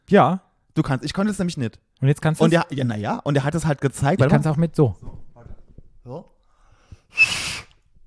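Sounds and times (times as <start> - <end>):
speech: 0.1 - 5.2, 6.0 - 6.3, 7.1 - 7.4
short breathy whistle with fingers in mouth: 7.1 - 7.8.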